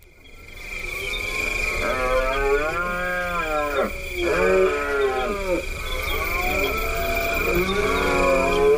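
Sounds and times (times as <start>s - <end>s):
steady high hum: 0.0s - 8.7s
red deer stag bellowing during the rut: 1.8s - 8.7s.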